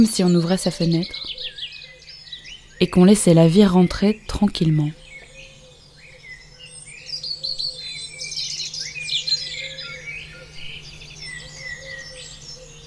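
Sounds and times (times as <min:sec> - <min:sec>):
speech: 0:00.0 - 0:01.5, 0:02.8 - 0:05.0
many birds singing in a dawn chorus: 0:00.0 - 0:12.8.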